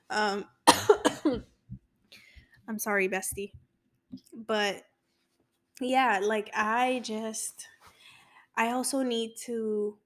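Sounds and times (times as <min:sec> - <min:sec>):
speech: 0:00.1 - 0:01.5, 0:02.7 - 0:04.9, 0:05.8 - 0:07.7, 0:08.6 - 0:10.0
person coughing: 0:00.7 - 0:01.5.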